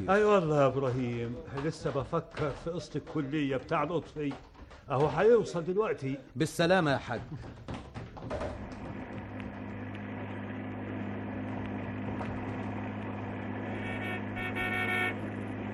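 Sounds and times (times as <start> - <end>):
speech: 0.0 - 8.5
low truck engine drone: 8.6 - 15.7
freight truck horn honking: 13.3 - 15.7.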